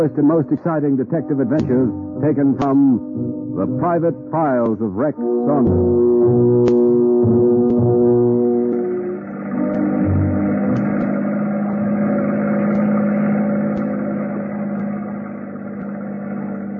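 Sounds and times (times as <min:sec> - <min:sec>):
speech: 0:00.0 - 0:08.2
speedboat engine slowing down alongside a gambling ship at anchor: 0:05.7 - 0:16.7.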